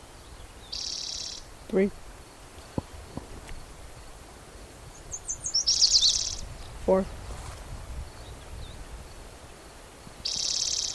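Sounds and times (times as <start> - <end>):
Spotted Towhee song at Black's Creek: 0.0 - 3.1, 4.9 - 7.2, 8.0 - 10.9
steady low background noise: 0.0 - 10.9
speech: 1.7 - 2.0, 6.9 - 7.2.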